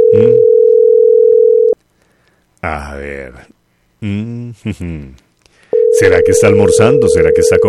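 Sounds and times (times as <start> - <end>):
telephone line tone while placing an outgoing call: 0.0 - 1.8, 5.7 - 7.6
speech: 2.6 - 5.2, 5.9 - 7.6.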